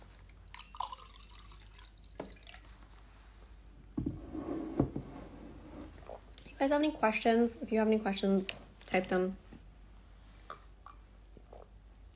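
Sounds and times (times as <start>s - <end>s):
water pouring into a glass: 0.5s - 2.7s
speech: 6.6s - 9.4s.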